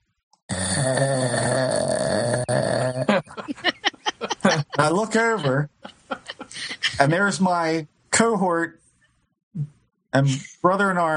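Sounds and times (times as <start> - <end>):
man snoring while asleep on the floor of a haunted house: 0.5 - 3.3
speech: 0.8 - 1.2, 4.8 - 5.7, 7.0 - 8.8, 10.1 - 11.1
laughter: 2.5 - 7.6.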